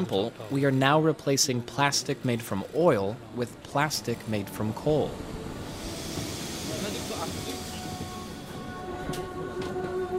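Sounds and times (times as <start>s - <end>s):
speech: 0.0s - 5.4s
train running in a metro station in Pyongyang: 0.5s - 10.1s.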